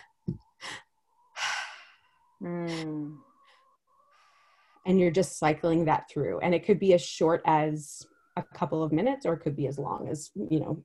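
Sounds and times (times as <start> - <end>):
person inhaling into belly then chest: 1.4 - 2.1
speech: 2.4 - 3.2, 4.9 - 10.8.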